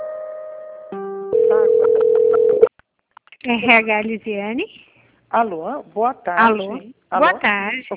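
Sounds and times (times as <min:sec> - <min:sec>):
telephone line tones while a call is being transferred: 0:01.4 - 0:02.7
speech: 0:01.5 - 0:02.6, 0:03.4 - 0:07.9.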